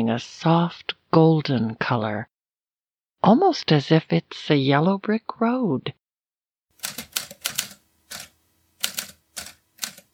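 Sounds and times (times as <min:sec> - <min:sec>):
speech: 0:00.0 - 0:02.3, 0:03.2 - 0:06.0
typewriter typing: 0:06.8 - 0:10.1.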